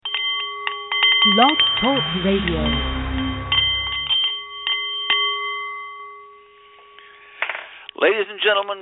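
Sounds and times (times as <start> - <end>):
Nepalese meditation singing bowl chiming: 0.1 - 7.3
speech: 1.2 - 3.0, 8.0 - 8.8
low rumbling noise: 1.3 - 4.2.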